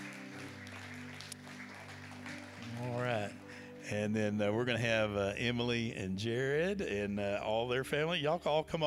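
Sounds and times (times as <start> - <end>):
congregation applauding: 0.0 - 3.5
speech: 3.9 - 8.8.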